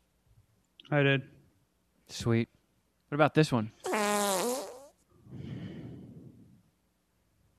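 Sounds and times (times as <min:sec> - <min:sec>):
speech: 0:00.9 - 0:01.4, 0:02.1 - 0:03.8
loud squeaky sputtering fart: 0:03.8 - 0:05.0.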